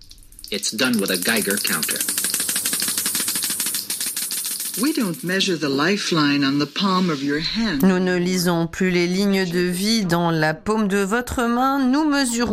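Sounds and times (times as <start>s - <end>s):
Geiger counter clicking: 0.1s - 5.9s
speech: 0.5s - 2.2s, 4.8s - 12.5s.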